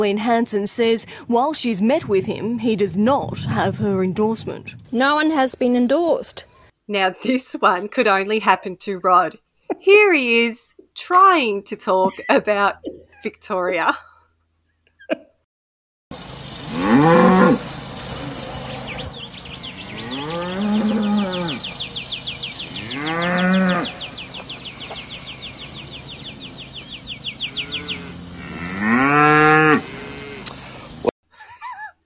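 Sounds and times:
speech: 0:00.0 - 0:14.1
cow mooing: 0:16.7 - 0:17.6, 0:19.7 - 0:21.7, 0:22.7 - 0:24.0, 0:27.5 - 0:30.5.

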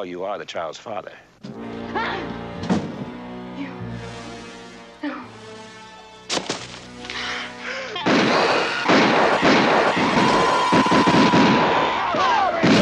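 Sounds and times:
speech: 0:00.0 - 0:02.7
gunshots: 0:08.0 - 0:12.8
volley of loud crackling gunfire: 0:08.0 - 0:12.8.

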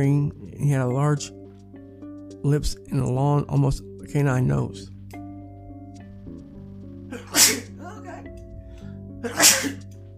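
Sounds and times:
speech: 0:00.0 - 0:01.4, 0:02.4 - 0:04.9
person sneezing: 0:07.1 - 0:08.2, 0:09.2 - 0:09.9.

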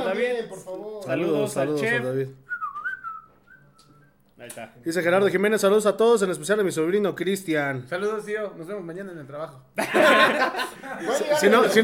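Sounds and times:
speech: 0:00.1 - 0:02.4, 0:04.4 - 0:11.8
person whistling a greeting: 0:02.5 - 0:04.2
laughter: 0:09.8 - 0:11.8.

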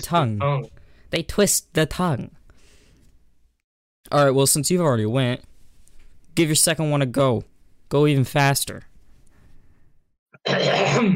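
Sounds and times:
speech: 0:00.0 - 0:02.4, 0:04.1 - 0:05.5, 0:06.4 - 0:08.9, 0:10.4 - 0:11.1
throat clearing: 0:10.4 - 0:11.1.

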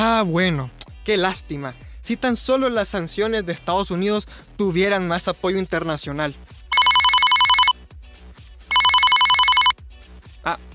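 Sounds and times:
speech: 0:00.0 - 0:06.5, 0:10.4 - 0:10.7
telephone ringing: 0:06.7 - 0:07.7, 0:08.7 - 0:09.8.

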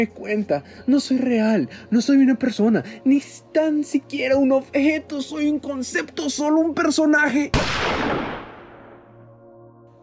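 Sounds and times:
speech: 0:00.0 - 0:08.4
loud gunshot with rumbling echo: 0:07.6 - 0:09.2.

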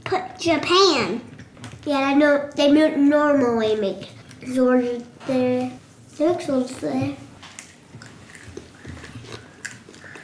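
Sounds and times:
speech: 0:00.1 - 0:07.2
child munching food with the mouth open: 0:07.6 - 0:10.2.

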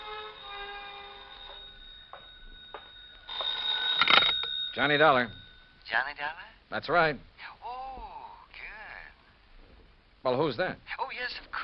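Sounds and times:
old-fashioned telephone bell ringing: 0:00.0 - 0:05.9
speech: 0:04.8 - 0:07.5, 0:10.2 - 0:11.6.

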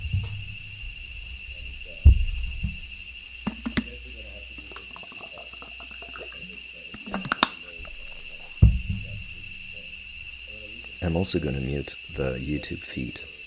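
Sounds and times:
soft thumps and clicks: 0:00.0 - 0:04.0, 0:07.0 - 0:10.5
cicadas buzzing: 0:00.0 - 0:13.4
speech: 0:11.1 - 0:13.4.

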